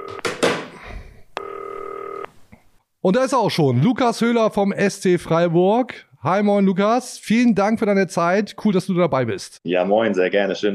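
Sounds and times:
green telephone steady electronic tone: 0:00.0 - 0:00.3, 0:01.4 - 0:02.3
speech: 0:03.0 - 0:10.7.

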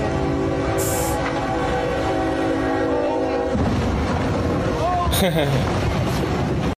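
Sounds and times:
train horn blaring: 0:00.0 - 0:04.8
heavy rumble of train wheels: 0:00.0 - 0:06.7
laughter: 0:05.1 - 0:05.7
speech: 0:05.2 - 0:05.9.

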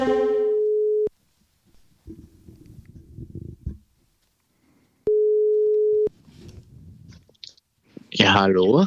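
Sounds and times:
telephone ringback tone from an unanswered call: 0:00.2 - 0:01.1, 0:05.1 - 0:06.1
faint rustling: 0:01.2 - 0:08.2
speech: 0:08.4 - 0:08.8.

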